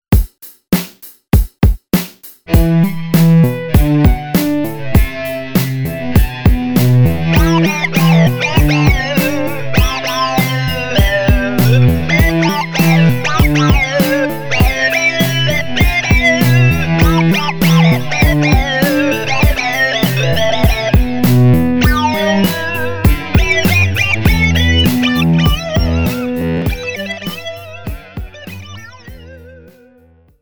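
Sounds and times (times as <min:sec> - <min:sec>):
filtered synth arpeggio: 0:02.6 - 0:29.7.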